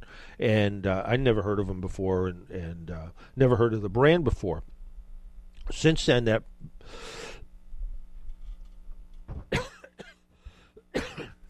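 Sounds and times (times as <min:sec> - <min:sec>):
speech: 0:00.4 - 0:04.8, 0:05.7 - 0:07.2
person coughing: 0:09.3 - 0:10.2, 0:10.8 - 0:11.4
throat clearing: 0:09.3 - 0:10.2, 0:10.9 - 0:11.4.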